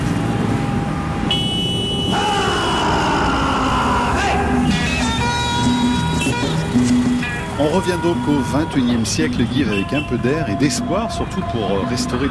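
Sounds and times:
dense city traffic rumbling outside the Aravalli conservation forest: 0.0s - 12.2s
motorbike and truck engines droning: 0.0s - 12.2s
car horns honking: 1.2s - 11.3s
speech: 7.7s - 12.2s.

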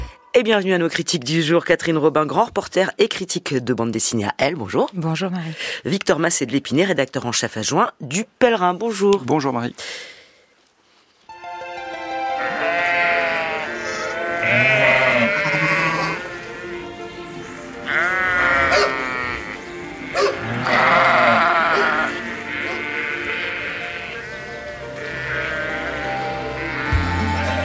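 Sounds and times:
speech: 0.4s - 10.1s
flock of sheep bleating: 12.4s - 16.8s, 17.5s - 27.5s.

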